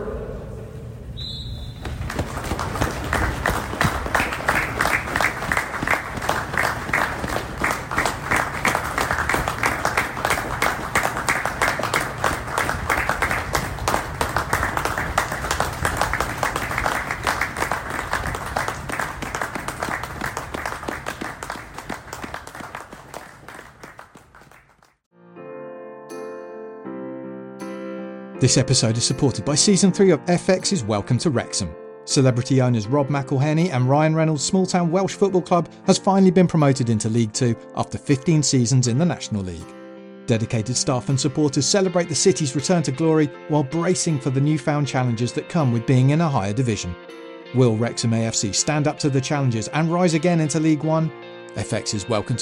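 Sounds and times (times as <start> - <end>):
large stadium crowd applauding: 1.8 - 25.0
speech: 28.4 - 52.4.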